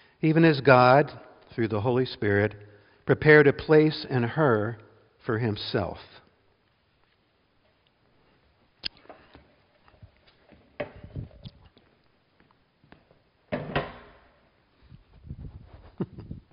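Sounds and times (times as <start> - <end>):
speech: 0.2 - 6.2
folding chair used as a theater prop being opened and set in place: 10.3 - 11.4, 13.5 - 14.3.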